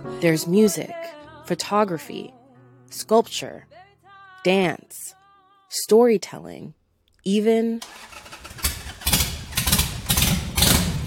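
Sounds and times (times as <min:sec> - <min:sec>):
speech: 0:00.0 - 0:03.8, 0:04.4 - 0:08.2
motorcycle engine revving over idle rumble: 0:07.9 - 0:11.0.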